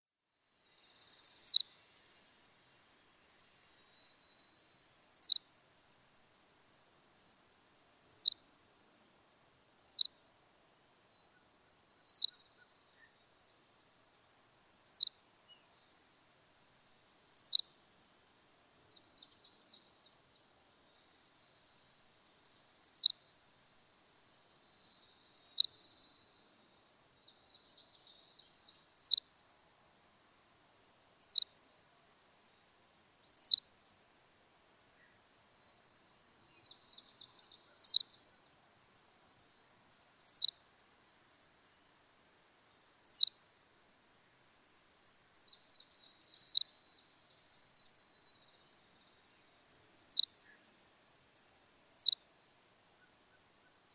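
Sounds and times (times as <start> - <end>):
Henslow's sparrow singing: 1.3 - 1.6, 5.0 - 5.4, 8.0 - 8.4, 9.8 - 10.1, 12.0 - 12.4, 14.8 - 15.1, 17.3 - 17.6, 22.8 - 23.1, 25.4 - 25.7, 27.5 - 29.2, 31.2 - 31.5, 33.3 - 33.6, 36.3 - 38.6, 40.2 - 40.5, 43.0 - 43.4, 45.4 - 47.3, 50.0 - 50.6, 51.8 - 52.2.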